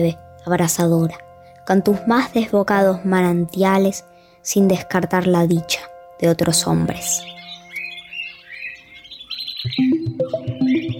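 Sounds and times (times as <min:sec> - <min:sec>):
speech: 0:00.0 - 0:07.4
birds chirping and singing: 0:06.5 - 0:10.9.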